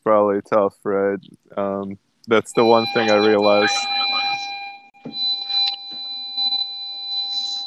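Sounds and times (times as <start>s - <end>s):
speech: 0.0s - 4.5s
car warning chime beeping while driving out of parking: 2.3s - 7.6s.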